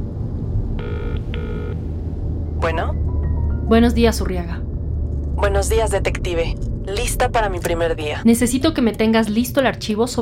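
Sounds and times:
constant low hum: 0:00.0 - 0:10.1
ringback tone of an outgoing phone call: 0:00.8 - 0:01.8
speech: 0:03.7 - 0:04.6, 0:05.4 - 0:10.1.

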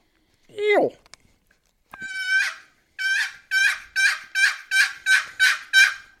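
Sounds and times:
speech: 0:00.8 - 0:01.0
turkey call yelps breaking from high to low pitch: 0:02.0 - 0:06.1.

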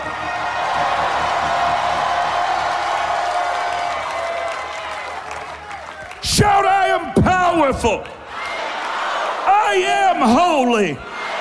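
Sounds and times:
large audience roaring and cheering: 0:00.0 - 0:11.3
audience clapping: 0:02.8 - 0:06.2
speech: 0:07.7 - 0:08.2, 0:09.7 - 0:11.1.

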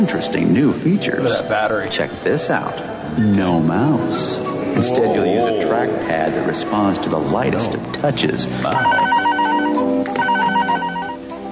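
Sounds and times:
speech: 0:00.0 - 0:09.2
multi-purpose screen phone ringing with electronic warbling trill: 0:08.6 - 0:11.5.

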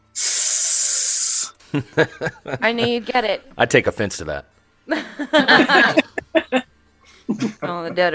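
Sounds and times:
person imitating a snake's hiss: 0:00.0 - 0:01.7
laughter: 0:01.7 - 0:03.3, 0:04.9 - 0:06.6, 0:07.2 - 0:08.1
speech: 0:01.7 - 0:06.7, 0:07.4 - 0:08.1.

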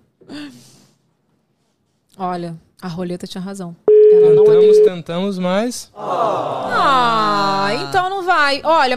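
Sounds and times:
speech: 0:02.2 - 0:08.9
electronic ringback tone of an unanswered phone call: 0:03.9 - 0:05.0.

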